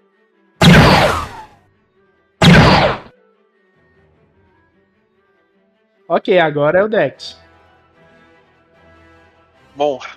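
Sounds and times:
gunshots: 0.6 - 1.5, 2.4 - 3.1
speech: 6.1 - 7.4, 9.8 - 10.1.

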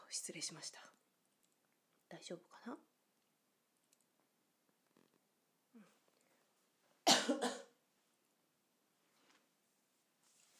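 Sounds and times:
speech: 0.1 - 1.0, 2.1 - 2.9
faint throaty sound: 5.6 - 7.7
person coughing: 7.1 - 7.8.

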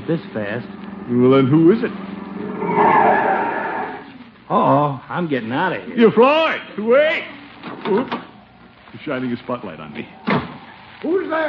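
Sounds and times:
speech: 0.1 - 3.2, 4.5 - 8.2, 9.0 - 10.3, 11.0 - 11.4
car pulling up with tires skidding: 2.4 - 4.1.

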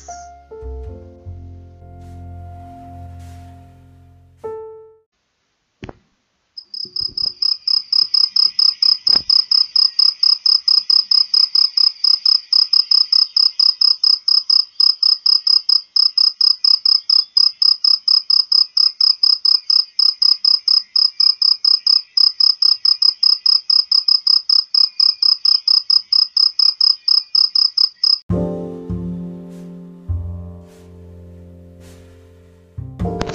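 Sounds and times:
low musical tone: 0.0 - 5.1, 28.3 - 33.3
crickets chirping as a sound effect: 6.6 - 28.2.

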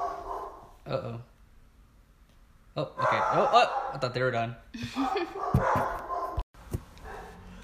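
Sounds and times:
dogs barking at somebody outside and an alarm system: 0.0 - 0.8, 2.9 - 4.3, 5.0 - 6.4, 7.0 - 7.6
speech: 0.9 - 1.3, 2.8 - 6.0.

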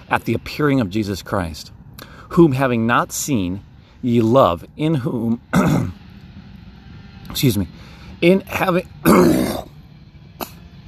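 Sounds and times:
speech: 0.1 - 6.0, 7.3 - 9.7
person clearing throat during a scripture reading: 5.5 - 6.0, 9.0 - 9.7.

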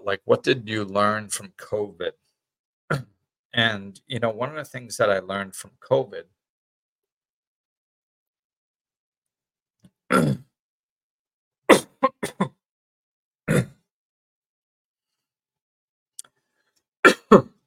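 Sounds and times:
speech: 0.0 - 2.2, 2.9 - 6.4, 10.1 - 10.5
person coughing after a swig of water: 10.1 - 10.4, 11.7 - 12.6, 13.5 - 13.8, 17.0 - 17.6.

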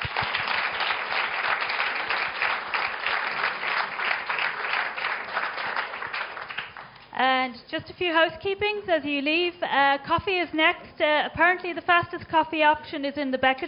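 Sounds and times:
audience applause for speakers: 0.0 - 7.0
speech: 7.4 - 13.6.

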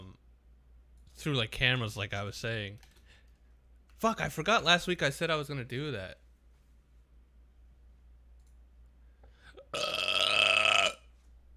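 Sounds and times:
speech: 1.2 - 2.9, 4.0 - 6.2, 9.7 - 10.0
loud drawn-out burp: 9.6 - 11.1.

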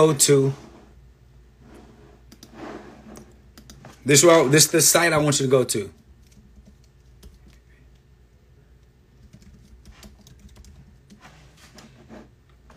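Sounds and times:
speech: 0.0 - 0.7, 4.0 - 6.0
low hum: 0.0 - 12.7
typing on a computer keyboard: 6.2 - 7.6, 9.2 - 11.1.

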